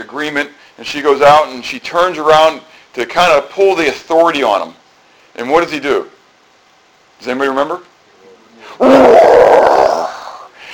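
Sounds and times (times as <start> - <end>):
speech: 0.1 - 4.8, 5.4 - 6.2, 7.2 - 7.9, 8.8 - 9.8
person imitating a lion's roar: 8.8 - 10.5.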